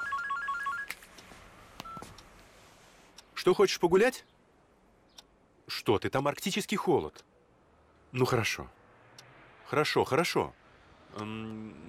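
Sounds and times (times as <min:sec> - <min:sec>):
mobile phone ringing with short electronic beeps: 0:00.0 - 0:00.9
speech: 0:03.4 - 0:04.3, 0:05.8 - 0:07.3, 0:08.1 - 0:08.8, 0:09.7 - 0:11.8.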